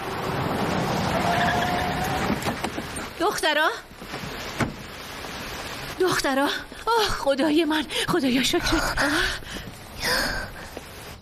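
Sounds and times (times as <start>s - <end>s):
dark four-door car rushing past: 0.0s - 2.7s
brief wavering squeal: 1.1s - 2.4s
speech: 3.3s - 3.9s, 6.0s - 10.4s.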